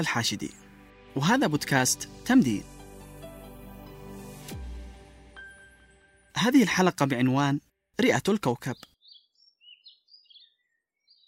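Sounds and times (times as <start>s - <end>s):
speech: 0.0s - 0.6s, 1.2s - 2.7s, 6.4s - 8.9s
small birds chirping and twittering in the morning: 8.0s - 11.2s.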